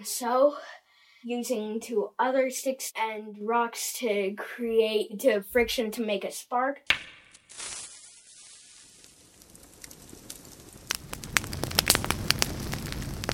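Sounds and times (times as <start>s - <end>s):
speech: 0.0s - 7.7s
small fire crackling and popping: 6.9s - 13.3s
low rushing flame: 7.5s - 13.3s.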